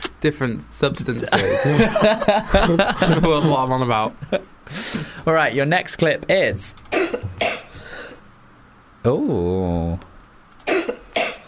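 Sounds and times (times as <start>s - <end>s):
speech: 0.2s - 7.2s, 9.0s - 10.1s
laughter: 1.2s - 4.4s
person coughing: 6.9s - 8.2s, 10.7s - 11.4s.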